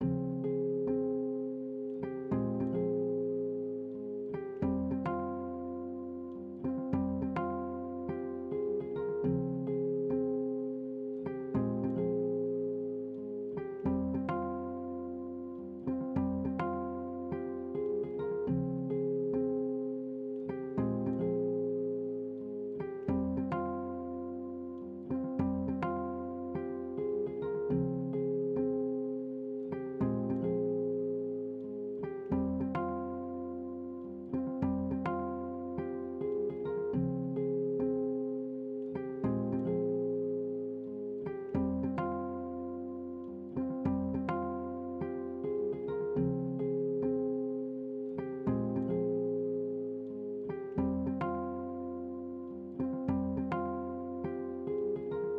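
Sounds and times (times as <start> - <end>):
Latin guitar loop in F minor: 0.0 - 55.3.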